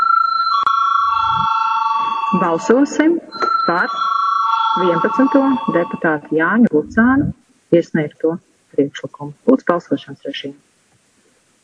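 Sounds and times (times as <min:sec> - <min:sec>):
electric bell ringing in a parliament chamber before a vote: 0:00.0 - 0:06.6
speech: 0:02.3 - 0:04.1, 0:04.8 - 0:10.7.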